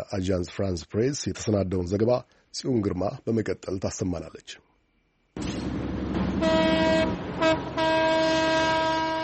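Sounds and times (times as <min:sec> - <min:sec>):
speech: 0:00.0 - 0:04.6
old French-built train rumbling: 0:05.4 - 0:09.2
old French-built train horn blasts leaving Dire Dawa station: 0:06.2 - 0:09.2.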